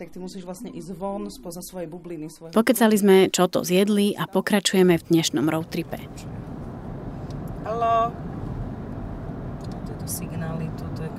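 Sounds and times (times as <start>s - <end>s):
speech: 0.0s - 6.5s, 7.6s - 8.3s, 10.1s - 11.1s
car driving through Pichne in Slovakia toward the Ukrainian border: 4.9s - 11.1s.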